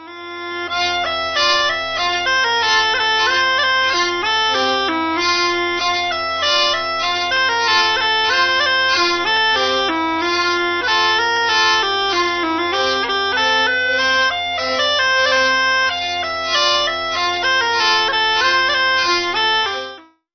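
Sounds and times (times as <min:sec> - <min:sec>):
bagpipe: 0:00.0 - 0:20.3
tromba marina: 0:12.1 - 0:17.5.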